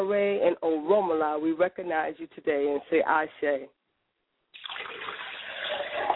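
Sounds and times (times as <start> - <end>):
speech: 0.0 - 3.8
water poured from a glass as a libation offering: 4.6 - 6.1.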